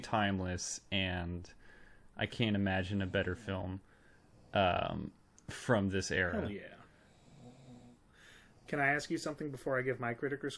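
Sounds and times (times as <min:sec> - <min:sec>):
speech: 0:00.0 - 0:03.9, 0:04.5 - 0:06.8, 0:08.7 - 0:10.5
snoring: 0:07.0 - 0:08.0.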